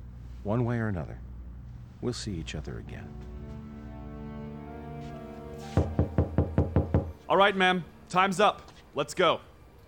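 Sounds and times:
low steady hum: 0.0s - 9.8s
speech: 0.4s - 1.3s, 2.0s - 3.4s, 7.3s - 9.5s
loud knocking on a locked door: 5.8s - 7.2s.

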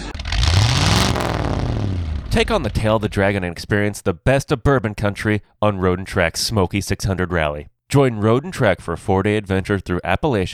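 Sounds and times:
three-cylinder car engine idling at low revs: 0.0s - 3.3s
speech: 2.4s - 10.5s.

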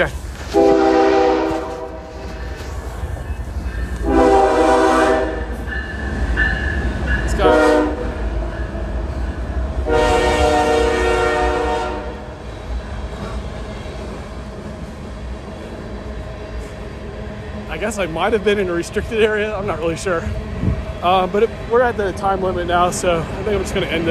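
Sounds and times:
speech: 0.0s - 0.2s, 17.9s - 24.0s
steady low rumble of rolling train wheels and cars: 0.0s - 24.0s
passing train sounding its horn: 0.5s - 2.4s, 4.0s - 5.6s, 7.3s - 8.2s, 9.8s - 12.3s.

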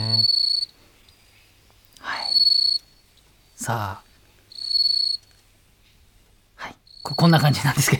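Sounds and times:
bell crickets chirping in high-pitched trills: 0.0s - 1.3s, 2.0s - 5.4s, 6.9s - 7.9s
speech: 3.6s - 4.1s, 7.0s - 7.9s.

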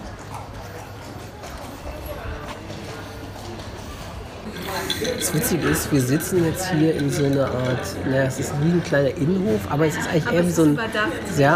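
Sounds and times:
horse hooves clip-clopping as a horse-drawn carriage passes: 0.0s - 4.6s
continuous noise: 0.0s - 11.5s
murmured voices: 0.0s - 11.5s
speech: 4.8s - 11.5s.

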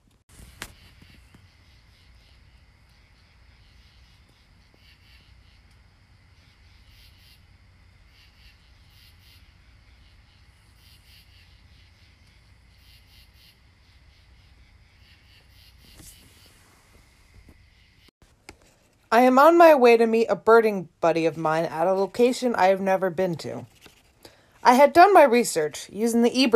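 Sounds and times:
soft low rush of wind through trees: 0.3s - 18.1s
katydids or cicadas rasping in woods in Madison Connecticut United States: 0.4s - 18.1s
speech: 19.1s - 23.7s, 24.6s - 26.5s.

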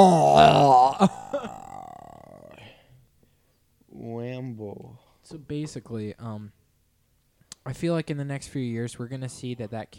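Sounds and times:
long croaky burp: 0.0s - 2.8s
speech: 5.2s - 6.6s, 7.6s - 9.9s.

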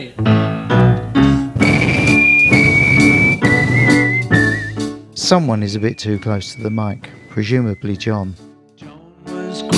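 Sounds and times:
loud busy backing music: 0.2s - 9.7s
two people whistling a melody: 1.6s - 5.0s, 5.7s - 8.5s
speech: 5.3s - 8.5s.

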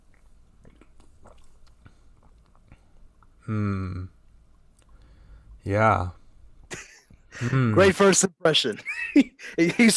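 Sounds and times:
faint low hum: 0.0s - 9.9s
person sipping freshly opened mint sparkling water: 0.1s - 3.4s
soft wet mouth clicks: 0.1s - 3.4s
speech: 3.5s - 4.2s, 5.6s - 6.2s, 7.4s - 9.9s
laughter: 6.7s - 7.8s, 8.7s - 9.9s.

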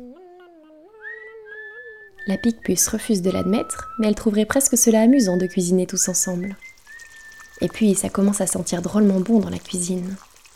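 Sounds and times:
person whistling a short melodic tune: 0.9s - 4.3s, 5.2s - 7.6s
speech: 2.3s - 6.7s, 7.6s - 10.3s.

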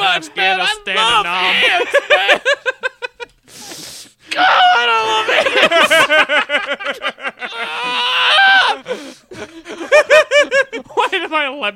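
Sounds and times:
man letting out a loud strained scream: 0.0s - 2.0s, 4.3s - 6.0s, 7.4s - 8.9s
laughter: 0.0s - 3.5s, 4.8s - 11.4s
speech: 0.2s - 2.8s.

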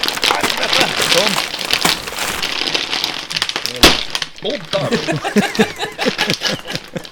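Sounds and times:
plastic bag tearing open at the wrong end: 0.0s - 5.2s
bag contents spilling and clattering on the floor: 0.0s - 7.1s
laughter: 0.3s - 1.1s, 4.8s - 7.1s
speech: 4.4s - 6.9s.

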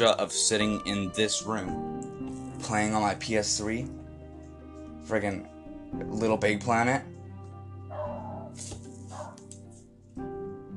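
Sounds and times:
speech: 0.0s - 4.0s, 5.0s - 7.1s
dog barking: 7.9s - 9.4s.

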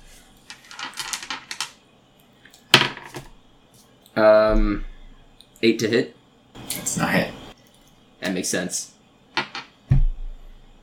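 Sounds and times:
dice rolling on a table during a game: 0.5s - 1.8s, 2.7s - 3.3s, 9.4s - 9.7s
speech: 4.2s - 4.9s, 5.6s - 6.2s, 8.3s - 9.0s.

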